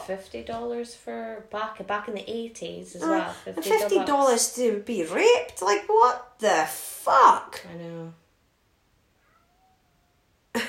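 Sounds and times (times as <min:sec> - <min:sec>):
speech: 0:00.1 - 0:08.2
faint drawn-out cat meow: 0:09.2 - 0:10.3.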